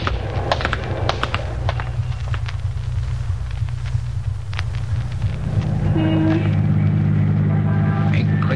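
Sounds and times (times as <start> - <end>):
car engine humming while driving through city traffic: 0.0 - 8.5
surrounding city traffic noise: 0.0 - 8.5
brief horn-like tone: 5.4 - 8.5.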